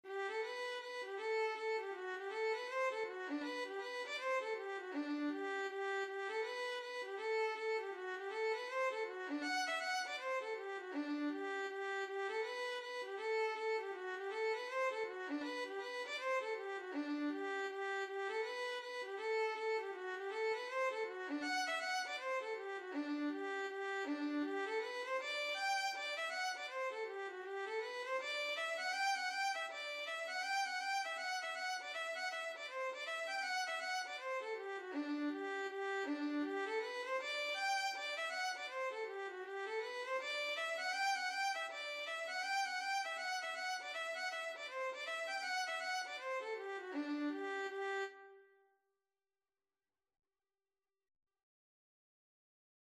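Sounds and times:
violin playing a hornpipe: 0.1 - 48.5.

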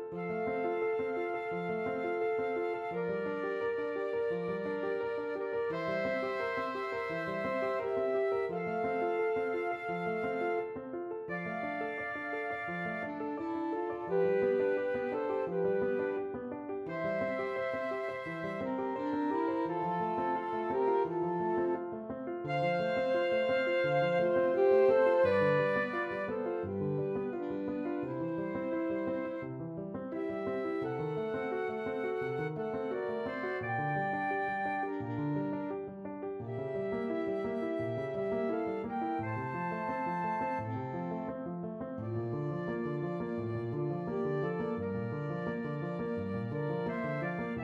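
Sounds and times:
flute: 0.1 - 47.6
alto saxophone: 5.5 - 8.7, 11.3 - 16.2, 16.9 - 21.7, 22.5 - 29.4, 46.2 - 47.6.

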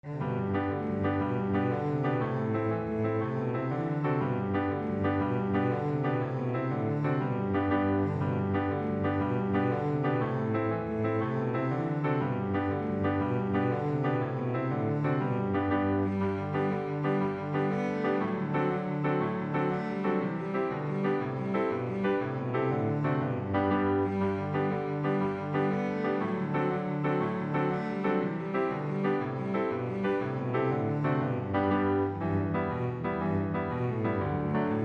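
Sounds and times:
cello playing Irish jig medley: 0.0 - 34.8.

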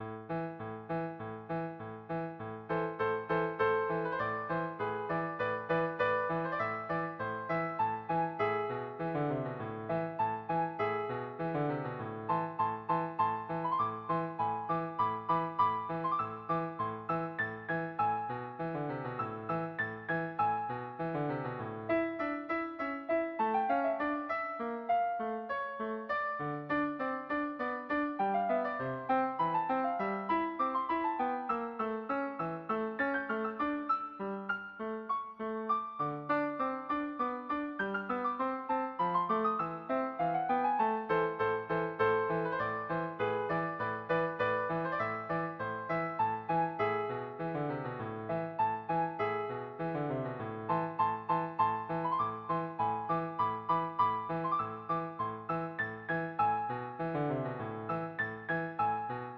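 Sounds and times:
piano: 0.0 - 59.3.

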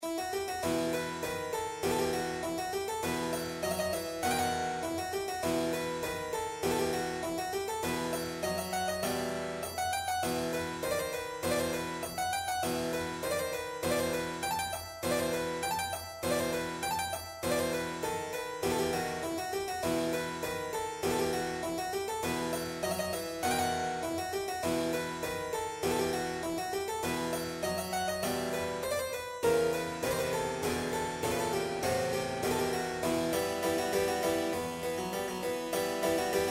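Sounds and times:
piano piece: 0.0 - 36.4.

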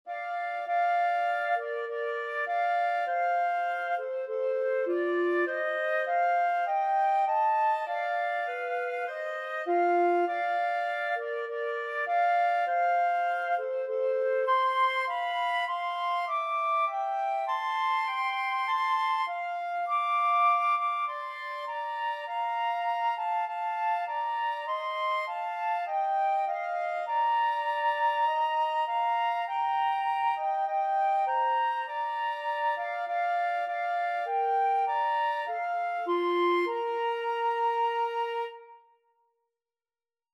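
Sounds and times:
flute and clarinet duet: 0.0 - 39.0.

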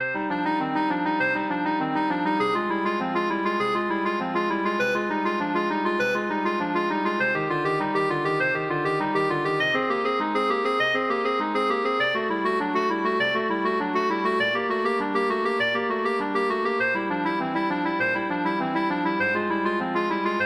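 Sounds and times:
clarinet playing a prelude: 0.0 - 20.4.

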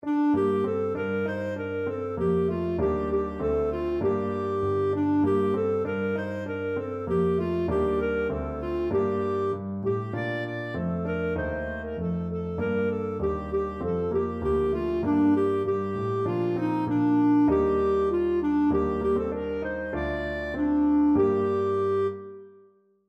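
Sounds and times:
clarinet playing a carol: 0.0 - 22.7.

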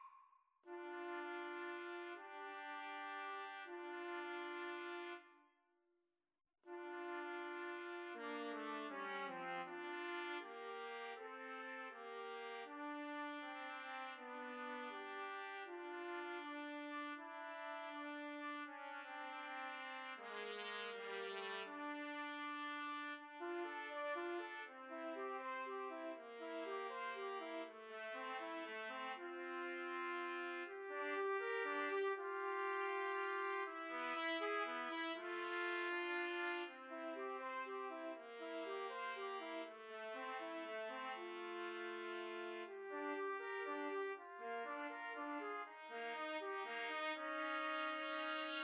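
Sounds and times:
trumpet trio: 0.7 - 5.4, 6.7 - 48.6.

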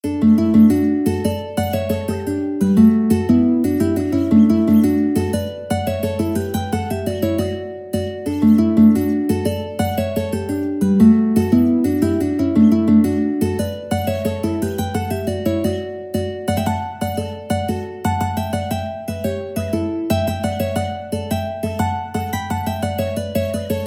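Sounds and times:
mandolin duet: 0.0 - 23.8.

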